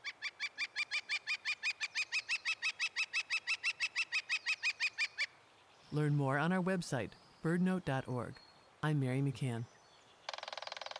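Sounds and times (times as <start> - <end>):
woodpecker giving sharp call notes: 0.0 - 5.4, 9.7 - 10.9
speech: 5.9 - 9.8.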